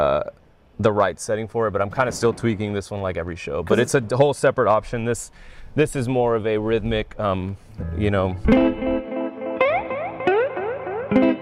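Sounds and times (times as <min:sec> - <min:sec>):
speech: 0:00.8 - 0:08.8
electric guitar through tape echo delay pedal: 0:08.4 - 0:11.3.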